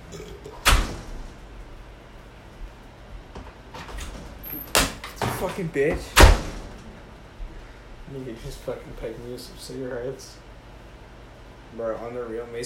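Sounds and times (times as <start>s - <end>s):
front door pulled shut with a sharp thud: 0.6s - 1.4s, 6.2s - 6.8s
speech: 5.4s - 6.4s, 8.1s - 10.4s, 11.8s - 12.6s.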